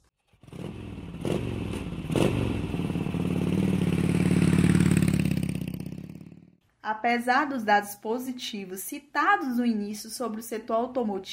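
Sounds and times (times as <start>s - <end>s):
motorcycle engine revving and accelerating: 0.2s - 6.6s
speech: 6.9s - 11.3s.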